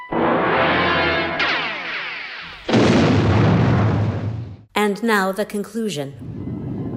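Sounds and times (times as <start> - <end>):
ship blowing up: 0.1 - 4.7
speech: 4.9 - 6.4.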